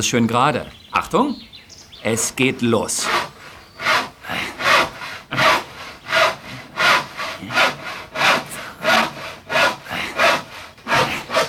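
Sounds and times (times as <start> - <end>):
speech: 0.0 - 3.3
hand saw cutting through wood to saw off a mast: 2.8 - 11.4.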